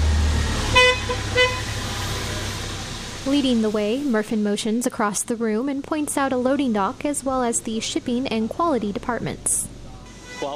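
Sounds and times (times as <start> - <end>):
steady low forklift engine rumble: 0.0 - 10.5
forklift horn beeps at an intersection: 0.7 - 1.8, 10.1 - 10.5
speech: 3.3 - 9.7, 10.4 - 10.5.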